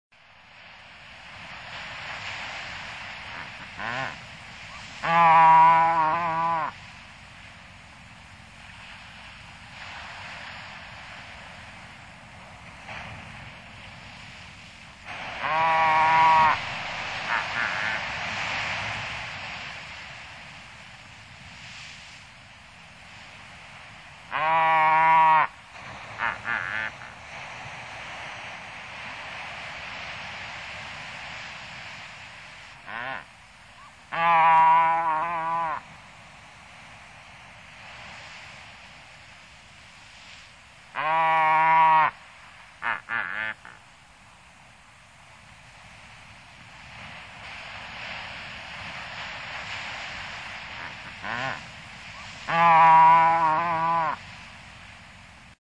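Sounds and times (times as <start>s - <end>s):
Diomedea albatrus calling at sea off Sakhalin and the Kuril Islands: 3.3s - 6.8s, 15.4s - 18.1s, 24.3s - 25.6s, 26.2s - 27.2s, 32.8s - 35.9s, 41.0s - 42.2s, 42.8s - 43.8s, 50.7s - 54.2s.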